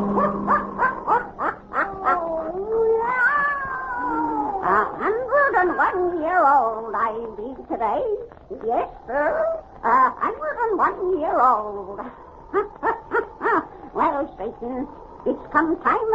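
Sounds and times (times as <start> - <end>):
black cat yowling: 0.1 - 6.8
speech: 6.6 - 12.7, 14.2 - 16.1.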